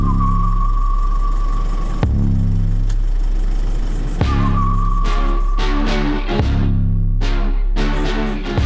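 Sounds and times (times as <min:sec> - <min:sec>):
faint whine above a car engine: 0:00.0 - 0:07.2
car engine starting and idling: 0:00.0 - 0:08.6.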